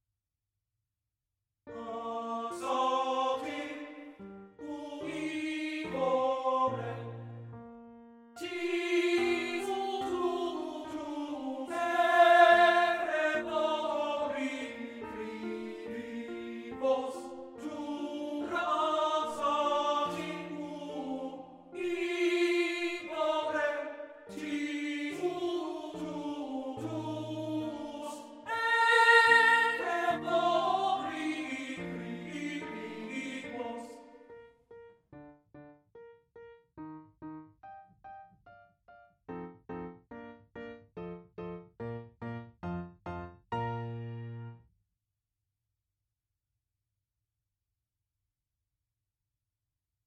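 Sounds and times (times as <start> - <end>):
piano accompaniment: 1.7 - 44.7
person singing a song for voice and piano: 8.4 - 34.1.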